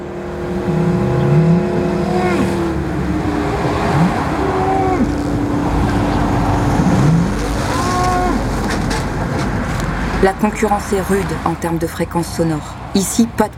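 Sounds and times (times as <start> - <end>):
Belgian Blue cattle mooing beside a road: 0.0 - 8.7
loud steady roar of motorway traffic on open ground: 0.0 - 13.5
speech: 10.2 - 13.5.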